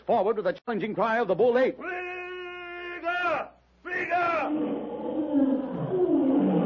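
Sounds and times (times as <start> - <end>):
speech: 0.1 - 2.0
charging lion roaring: 4.4 - 6.6.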